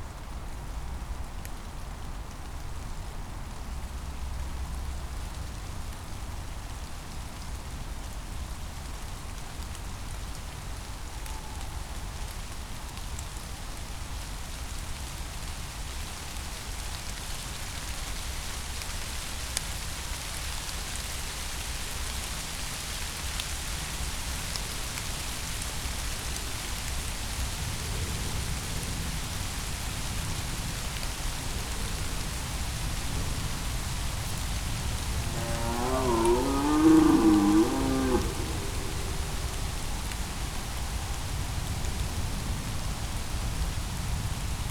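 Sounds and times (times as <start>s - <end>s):
steady rain falling through a night forest: 0.0s - 44.6s
soft low rumble: 31.0s - 42.4s
short low animal call, perhaps a deer: 34.4s - 41.3s.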